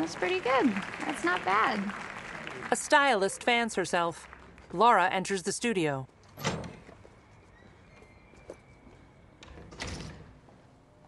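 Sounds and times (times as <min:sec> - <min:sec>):
speech: 0:00.1 - 0:06.5
door opening in a studio building: 0:06.3 - 0:07.0, 0:09.4 - 0:10.4.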